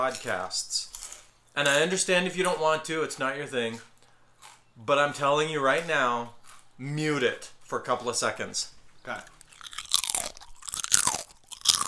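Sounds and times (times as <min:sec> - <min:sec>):
speech: 0:00.0 - 0:00.9, 0:01.6 - 0:03.9, 0:04.8 - 0:09.4
people chomping on crunchy snacks: 0:00.0 - 0:02.0, 0:03.7 - 0:07.1, 0:09.1 - 0:11.8.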